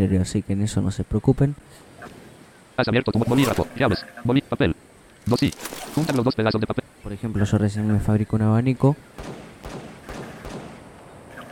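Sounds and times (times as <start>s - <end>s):
speech: 0.0s - 2.2s, 2.8s - 9.8s
distant gunshots: 9.2s - 11.3s.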